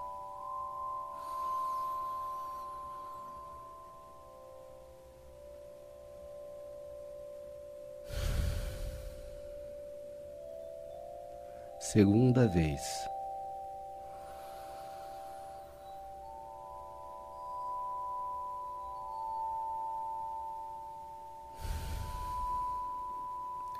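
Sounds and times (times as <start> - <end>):
soft sustained musical drone: 0.0 - 23.7
faint airy inhale: 8.0 - 9.8, 14.1 - 16.1, 21.5 - 23.0
louder breathy exhale: 8.0 - 9.8, 14.1 - 16.0, 21.5 - 22.9
speech: 11.9 - 13.1.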